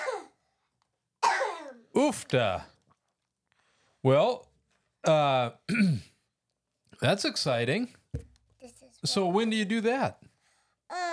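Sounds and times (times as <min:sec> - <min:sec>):
child coughing: 0:00.0 - 0:00.4, 0:01.2 - 0:01.9, 0:05.7 - 0:06.0
speech: 0:02.0 - 0:02.7, 0:04.0 - 0:06.1, 0:07.0 - 0:10.2, 0:10.9 - 0:11.1.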